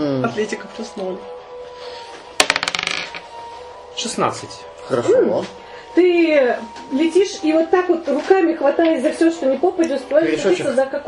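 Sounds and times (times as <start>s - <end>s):
speech: 0.3s - 1.4s, 4.0s - 11.0s
die clattering across a hard surface: 2.4s - 3.3s.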